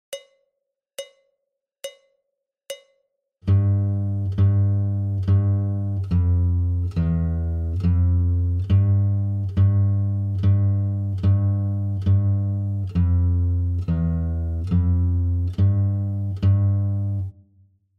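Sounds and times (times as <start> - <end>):
guitar warm-up in low G: 3.5 - 17.3.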